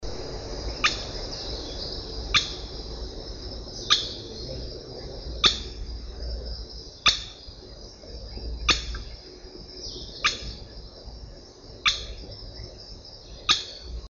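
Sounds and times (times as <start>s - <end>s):
tachiro bird call: 0.7s - 2.8s, 3.7s - 9.2s, 9.8s - 10.8s, 11.8s - 14.0s.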